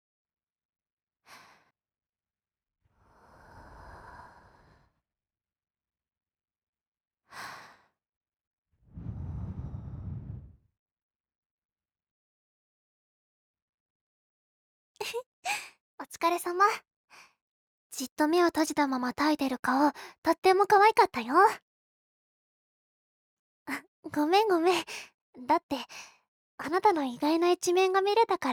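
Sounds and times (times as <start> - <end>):
breathy puffs of air blown into the ear: 9.0 - 10.6
short quick inhale: 9.0 - 10.6
speech: 15.0 - 17.3, 18.0 - 21.6, 23.7 - 28.5.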